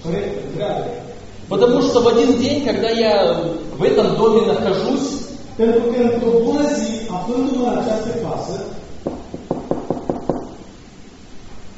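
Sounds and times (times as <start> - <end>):
speech: 0.0 - 8.8
knocking on a door: 9.0 - 10.6.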